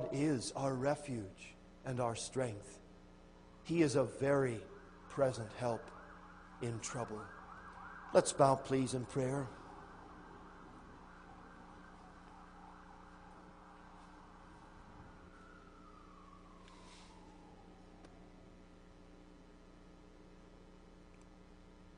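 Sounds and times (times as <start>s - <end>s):
emergency vehicle siren passing outside: 0.0s - 0.7s, 3.4s - 18.9s
low hum: 0.0s - 21.9s
steady hiss: 0.0s - 21.9s
speech: 0.1s - 2.8s, 3.6s - 6.0s, 6.6s - 7.4s, 8.1s - 9.6s.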